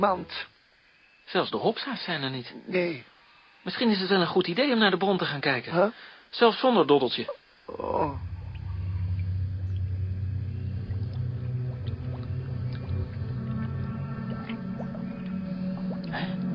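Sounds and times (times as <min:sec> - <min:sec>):
speech: 0:00.0 - 0:00.5, 0:01.3 - 0:08.3
water being sucked up through a hose: 0:07.7 - 0:16.5.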